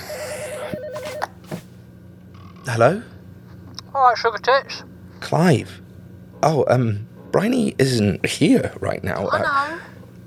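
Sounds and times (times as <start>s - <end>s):
telephone ringing with electronic warbling trill: 0.0s - 1.4s
speech: 2.6s - 3.1s, 3.9s - 5.8s, 6.4s - 10.0s.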